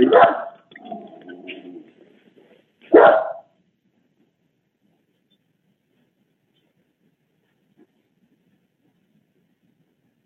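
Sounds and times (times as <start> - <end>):
dog barking: 0.0 - 0.6, 2.9 - 3.5.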